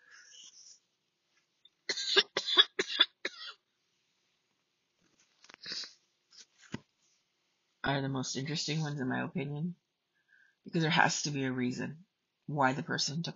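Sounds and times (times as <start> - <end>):
person coughing harshly: 1.9 - 3.6
speech: 7.9 - 9.8, 10.7 - 13.3.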